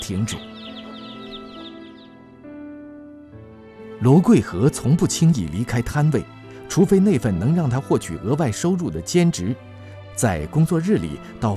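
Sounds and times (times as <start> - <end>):
newly hatched chicks peeping: 0.0 - 2.2
speech: 0.1 - 0.6, 4.0 - 11.5.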